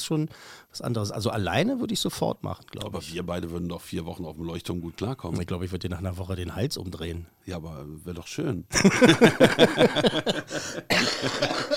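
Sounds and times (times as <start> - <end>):
speech: 0.1 - 11.7
laughter: 8.8 - 11.7
harsh cough: 10.7 - 11.7.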